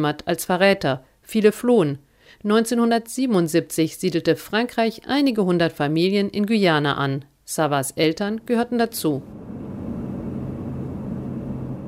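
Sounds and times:
speech: 0:00.0 - 0:09.5
airplane engine drone flying in to Saül in French Guiana: 0:09.2 - 0:11.8.

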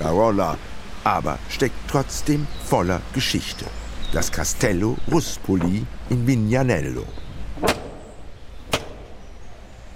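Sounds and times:
speech: 0:00.0 - 0:07.8
heavy resonant knocks on the large castle gate in Vignanello, Tuscia, Italy: 0:07.6 - 0:08.1, 0:08.7 - 0:09.2.

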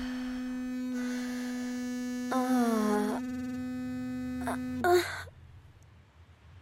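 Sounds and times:
wavering higher tone: 0:00.0 - 0:04.9
vibrator buzzing: 0:00.0 - 0:05.5
speech: 0:04.6 - 0:05.2.

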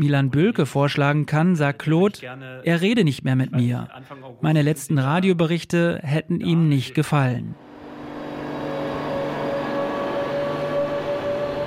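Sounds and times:
speech: 0:00.0 - 0:07.6
mechanical rumble at a railway station: 0:07.6 - 0:11.6
sustained tonal hum at a railway station: 0:07.6 - 0:11.6.

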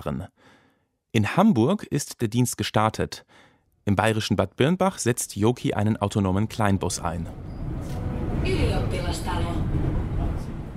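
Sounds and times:
speech: 0:00.0 - 0:10.0
Helsinki city tram rumbling as it approaches the market square: 0:06.5 - 0:10.7
brief high metallic tram squeals: 0:07.4 - 0:08.1.

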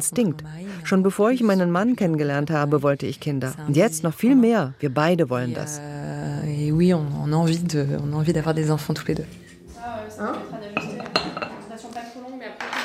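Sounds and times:
speech: 0:00.0 - 0:06.1, 0:06.8 - 0:10.6
female staff members chatting: 0:00.0 - 0:12.8
dishes and cutlery clinking in a small medical practice kitchen: 0:08.9 - 0:12.8.

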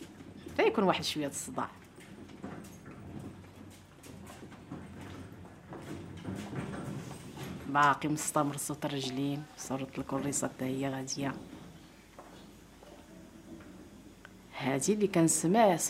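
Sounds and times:
cart rattling past: 0:00.0 - 0:12.0
footsteps: 0:00.0 - 0:14.5
clopping: 0:00.0 - 0:15.8.

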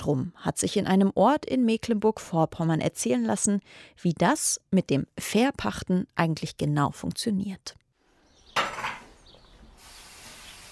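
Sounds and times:
speech: 0:00.0 - 0:07.8
cups and mugs clattering while making coffee: 0:08.5 - 0:09.2.

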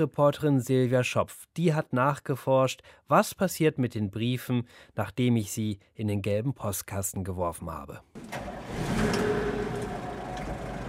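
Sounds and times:
speech: 0:00.0 - 0:09.2
postal worker's car driving past in Germany: 0:08.3 - 0:10.8
road noise: 0:08.3 - 0:10.8.

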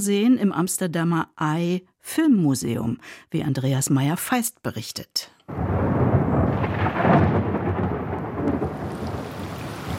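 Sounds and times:
speech: 0:00.0 - 0:05.6
steady rain drumming on a windowsill: 0:05.5 - 0:09.9
thunderstorm rumbling low and heavy: 0:05.5 - 0:09.9.

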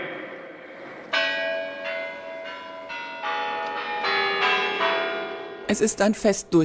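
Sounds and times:
Kremlin church bells pealing: 0:00.5 - 0:06.6
speech: 0:05.7 - 0:06.6.

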